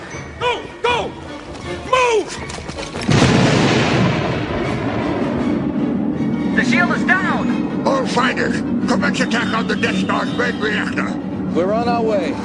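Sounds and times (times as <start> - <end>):
speech: 2.1 - 3.1, 6.9 - 12.4
rumbling debris: 3.0 - 9.2
explosive charges detonating at a bunker: 3.1 - 6.0.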